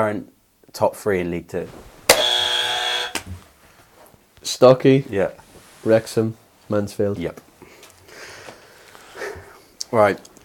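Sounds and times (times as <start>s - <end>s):
speech: 0.0s - 1.9s, 4.4s - 7.5s, 9.9s - 10.4s
quiz buzzer harsh electronic buzz: 2.1s - 3.3s
sharp click-like burst: 2.1s - 3.3s.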